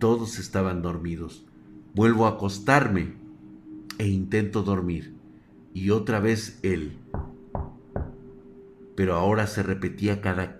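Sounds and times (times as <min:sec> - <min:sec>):
speech: 0:00.0 - 0:03.2, 0:04.0 - 0:05.2, 0:05.8 - 0:07.3, 0:09.0 - 0:10.5
faint steady hum: 0:00.0 - 0:10.5
knocking on wood: 0:07.2 - 0:08.2.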